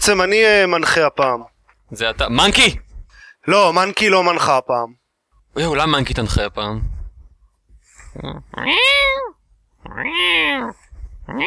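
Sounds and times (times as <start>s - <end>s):
speech: 0.0s - 2.8s, 3.4s - 7.0s, 8.2s - 11.4s
cat meowing: 8.5s - 11.4s.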